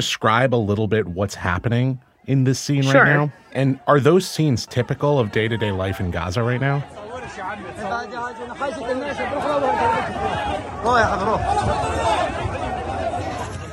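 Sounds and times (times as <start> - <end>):
speech: 0.0 - 10.2, 10.8 - 12.2
dense crowd shouting and calling over one another: 2.8 - 3.4, 4.7 - 13.7.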